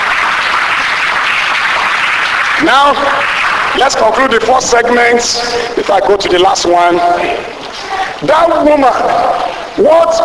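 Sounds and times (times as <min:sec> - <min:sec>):
church congregation clapping: 0:00.0 - 0:10.2
speech: 0:02.6 - 0:07.6, 0:08.2 - 0:10.2.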